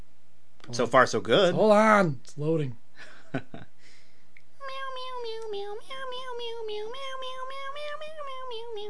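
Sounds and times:
speech: 0:00.7 - 0:03.7
cats meowing in a cat food commercial jingle: 0:04.6 - 0:08.8.

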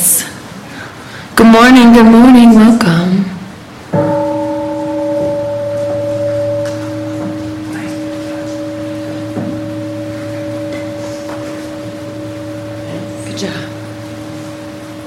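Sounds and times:
faint room noise: 0:00.0 - 0:15.0
speech: 0:01.4 - 0:03.3
large gong struck and ringing: 0:03.9 - 0:15.0.

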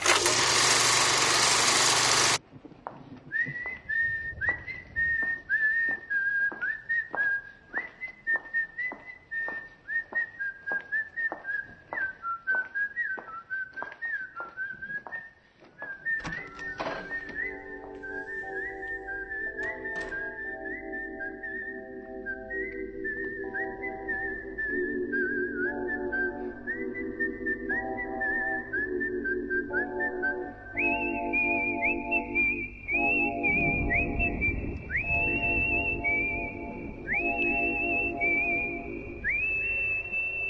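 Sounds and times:
loud burst of noise: 0:00.0 - 0:02.4
nurse whistling a melodic tune in an old film hospital scene: 0:03.3 - 0:40.4.

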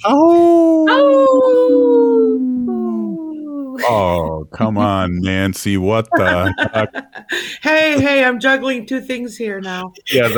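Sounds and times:
speech: 0:00.0 - 0:00.5, 0:03.9 - 0:10.3
loud wavering wolf howl sliding downward in pitch: 0:00.7 - 0:04.3
laughter: 0:03.8 - 0:04.3, 0:06.1 - 0:07.6, 0:10.0 - 0:10.3.

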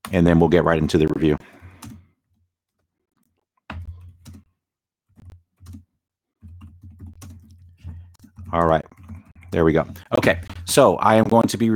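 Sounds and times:
speech: 0:00.1 - 0:01.6, 0:08.5 - 0:11.7
typing on a computer keyboard: 0:01.4 - 0:02.0, 0:03.7 - 0:04.5, 0:05.1 - 0:11.5.

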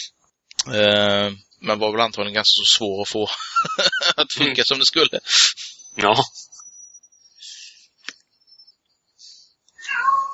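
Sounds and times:
speech: 0:00.0 - 0:06.5
faint steady high whine: 0:00.0 - 0:10.3
laughter: 0:03.2 - 0:06.6
cat meowing: 0:09.8 - 0:10.3.

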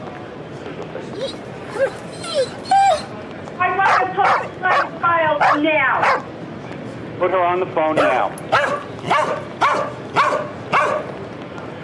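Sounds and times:
dog barking: 0:03.8 - 0:06.3, 0:08.0 - 0:11.1
speech: 0:07.3 - 0:09.4.

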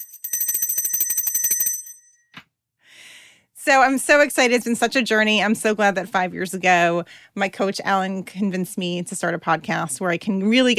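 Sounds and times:
bright metal bell ringing in a rattling trill: 0:00.0 - 0:02.1
speech: 0:03.7 - 0:10.7.

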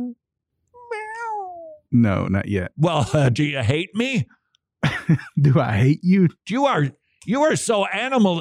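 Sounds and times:
cat meowing: 0:00.8 - 0:01.8
speech: 0:01.9 - 0:08.3
laughter: 0:02.0 - 0:04.0, 0:04.8 - 0:06.9.

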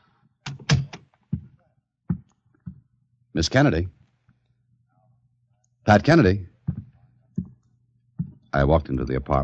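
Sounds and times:
speech: 0:03.4 - 0:04.0, 0:05.9 - 0:06.5, 0:08.5 - 0:09.4
firm knocks on a wooden door: 0:06.7 - 0:07.5.

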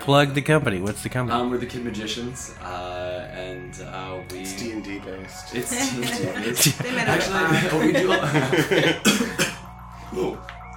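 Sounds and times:
speech: 0:00.0 - 0:09.5, 0:10.1 - 0:10.5
laughter: 0:05.8 - 0:09.5
sharp loud raspy coughs: 0:08.8 - 0:09.7.

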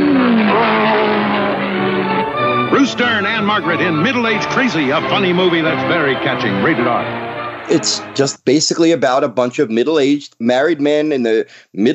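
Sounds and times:
Porsche sports car engine revving: 0:00.0 - 0:04.4
speech: 0:02.8 - 0:11.9.

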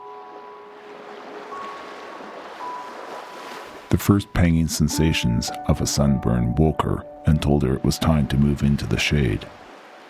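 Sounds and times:
sea waves washing on a beach: 0:00.0 - 0:04.0, 0:07.8 - 0:10.0
speech: 0:03.9 - 0:09.6.

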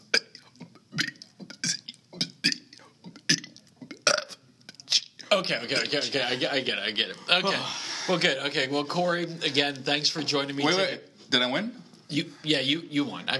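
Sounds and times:
person burping out the alphabet: 0:00.0 - 0:04.4
speech: 0:05.3 - 0:13.3.

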